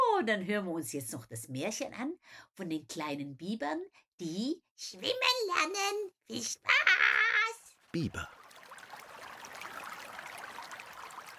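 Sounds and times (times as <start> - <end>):
speech: 0.2 - 7.0, 7.9 - 8.4
small winding river flowing at the foot of mountains: 8.3 - 11.3.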